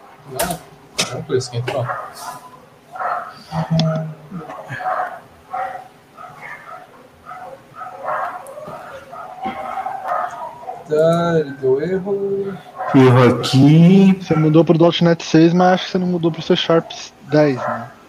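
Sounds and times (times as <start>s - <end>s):
speech: 0.3s - 2.5s, 3.4s - 5.2s, 10.9s - 18.0s
dog barking and whimpering with short yelping calls: 1.7s - 13.7s, 16.6s - 18.0s.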